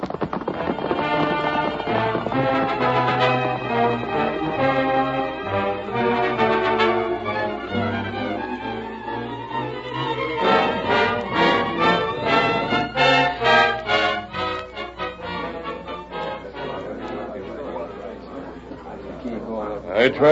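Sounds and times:
horses galloping away, hooves clip-clopping: 0.0s - 14.5s
dense sustained tonal sound: 0.5s - 19.2s.

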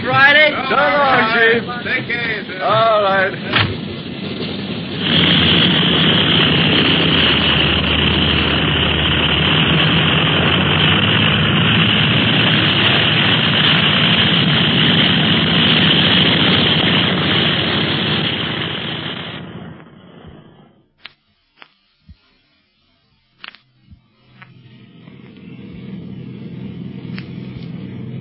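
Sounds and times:
speech: 0.0s - 4.1s
airplane engine drone heard from cabin: 0.0s - 28.1s
sharp clicks: 23.4s - 25.5s.

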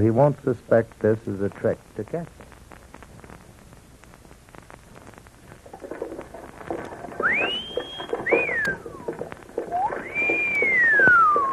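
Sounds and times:
speech: 0.0s - 2.4s
busy clatter and street noise: 0.9s - 11.5s
soldiers whistling at passers-by: 6.7s - 11.5s.

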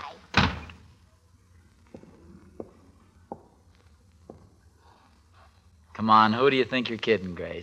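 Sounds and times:
door slamming shut as someone walks out: 0.3s - 0.8s
speech: 6.1s - 7.6s.

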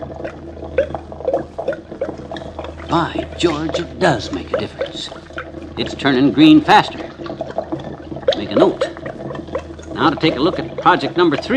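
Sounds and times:
liquid dripping into a container: 0.0s - 11.5s
low hum: 0.0s - 11.5s
speech: 2.9s - 5.2s, 5.8s - 7.0s, 8.4s - 8.9s, 10.0s - 11.5s.

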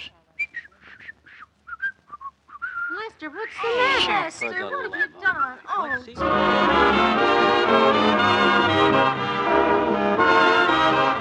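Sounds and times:
feeble whistle forced through crooked front teeth: 0.0s - 3.6s
speech: 3.2s - 10.5s.

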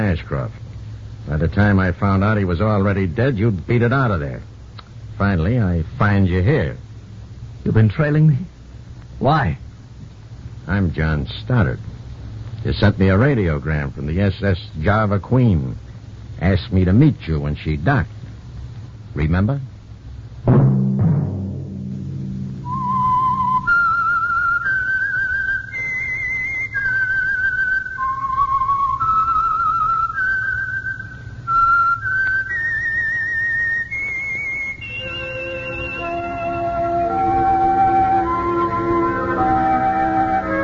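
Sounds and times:
speech: 0.1s - 4.5s, 5.2s - 6.8s, 7.6s - 8.5s, 9.2s - 9.6s, 10.7s - 11.9s, 12.6s - 15.8s, 16.4s - 18.2s, 19.1s - 19.7s, 20.4s - 20.8s
person whistling a slow eerie theme tune: 22.6s - 40.6s
low orchestral backing: 34.8s - 40.6s.

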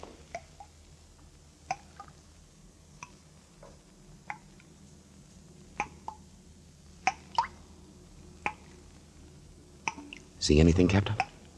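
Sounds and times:
low steady hum: 0.0s - 11.5s
water dripping in a stone chamber: 0.2s - 2.4s, 3.0s - 4.7s, 5.7s - 6.3s, 7.0s - 7.7s, 8.4s - 8.8s, 9.8s - 10.4s, 11.0s - 11.5s
speech: 10.4s - 11.3s.

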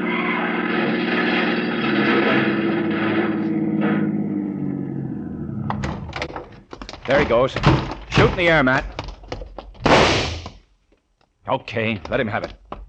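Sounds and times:
car engine roaring as it swerves around a car blocking the street: 0.0s - 6.4s
speech: 7.1s - 8.9s, 11.5s - 12.6s.

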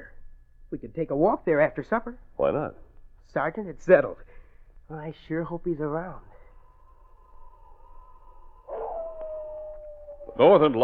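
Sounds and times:
speech: 0.7s - 4.3s, 4.9s - 6.3s, 10.4s - 10.8s
wolf or dog howling: 6.1s - 10.8s.

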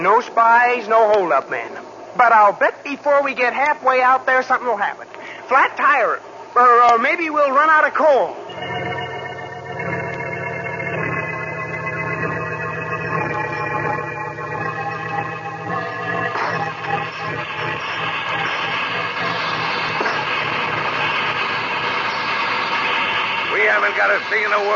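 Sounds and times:
speech: 0.0s - 8.8s, 23.7s - 24.7s
droning hum: 0.0s - 24.7s
steam train engine running: 8.6s - 24.7s.

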